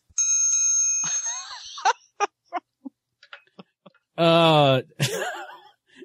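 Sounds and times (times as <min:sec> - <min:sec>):
small bell ringing with bright metallic tone: 0:00.2 - 0:01.9
people talking: 0:04.2 - 0:05.1.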